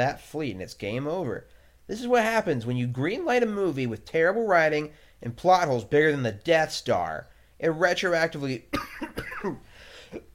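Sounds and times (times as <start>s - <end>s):
speech: 0.0s - 10.3s
person coughing: 8.7s - 10.3s.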